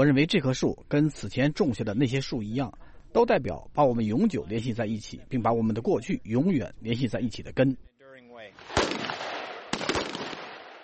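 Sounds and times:
speech: 0.0s - 8.9s
gunfire at a live-fire marksmanship competition held by US and South Korean army troops: 8.6s - 10.8s.

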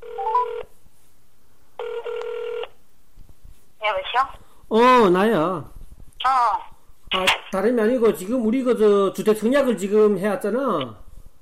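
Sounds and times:
telephone ringback tone: 0.0s - 0.7s, 1.8s - 2.7s
speech: 4.2s - 11.0s.

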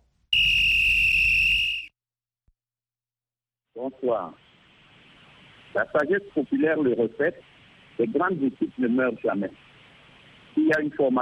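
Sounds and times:
loud shrill referee whistle blast: 0.3s - 1.9s
speech: 3.8s - 4.4s, 5.7s - 9.7s, 10.6s - 11.2s.

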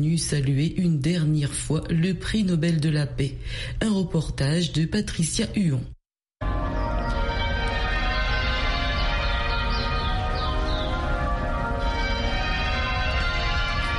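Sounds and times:
speech: 0.0s - 6.0s
cathedral church bells pealing in Cape Town: 6.4s - 13.9s.

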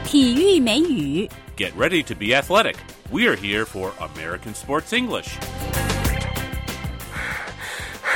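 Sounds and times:
speech: 0.1s - 5.8s
person panting out of breath after a 1500-metre long-distance training run: 7.0s - 8.1s.

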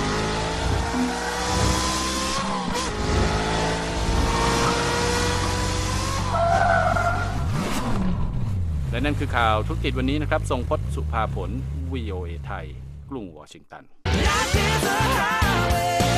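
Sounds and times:
supercar engine revving: 0.0s - 13.1s
tires squealing: 4.1s - 8.6s
speech: 9.0s - 16.0s.

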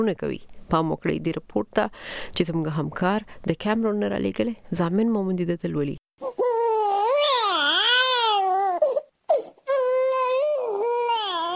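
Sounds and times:
speech: 0.0s - 6.4s
two-day-old newborn crying outside a private hospital in Douala, Cameroon: 6.2s - 11.5s.

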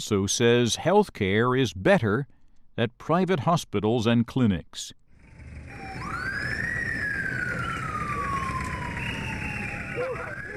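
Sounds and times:
speech: 0.0s - 5.0s
traffic noise: 5.2s - 10.5s
ambulance siren wailing through the street: 5.3s - 10.5s.

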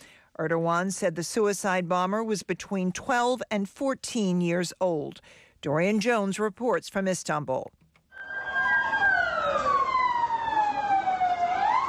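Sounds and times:
speech: 0.4s - 7.8s
ambulance siren of ambulances rushing wounded to hospitals in Gaziantep: 8.1s - 11.8s.

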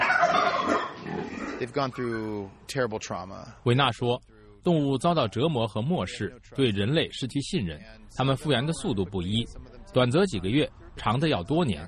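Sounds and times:
turkeys gobbling in a barn: 0.0s - 2.4s
speech: 1.6s - 11.8s.

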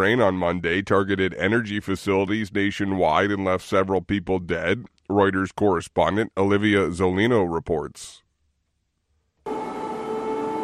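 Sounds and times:
speech: 0.0s - 8.2s
air raid sirens over Kyiv during an overnight Russian missile and drone attack: 9.5s - 10.6s.

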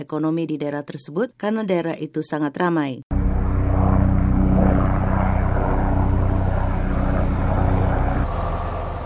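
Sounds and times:
speech: 0.0s - 3.2s
propeller firefighting aircraft engines flying overhead: 3.1s - 9.0s.

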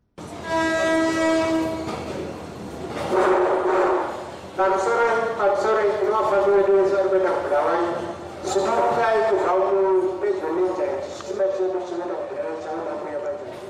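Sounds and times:
train horn at a railway station: 0.2s - 2.1s, 3.1s - 4.1s
train rumbling and hissing at a railway station: 0.2s - 13.6s.

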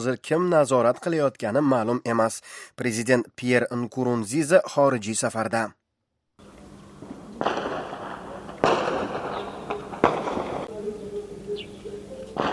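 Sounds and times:
speech: 0.0s - 5.8s
gunfire and explosions in a capital city during a military coup: 7.4s - 10.8s.

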